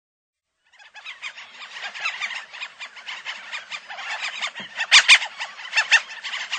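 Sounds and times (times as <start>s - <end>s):
Franklin's gulls calling in a dense squealing chorus: 0.7s - 6.5s.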